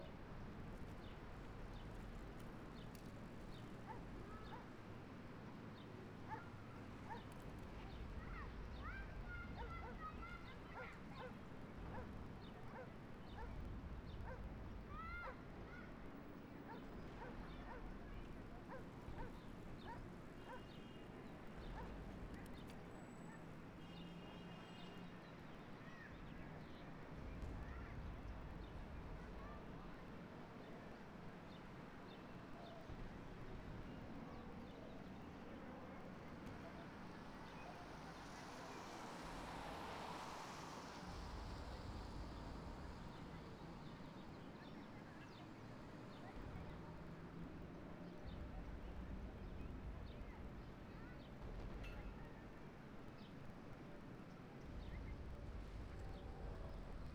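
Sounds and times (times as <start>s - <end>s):
calm village ambience: 0.0s - 57.1s.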